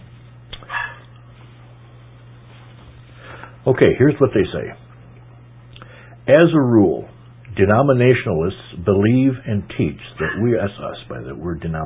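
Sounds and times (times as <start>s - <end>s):
steady low hum: 0.0s - 11.8s
dog barking outdoors: 0.6s - 1.1s
speech: 3.6s - 4.8s, 6.3s - 11.8s.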